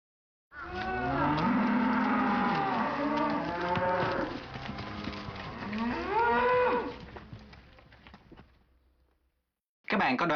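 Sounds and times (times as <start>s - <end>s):
cow mooing: 0.6s - 7.0s.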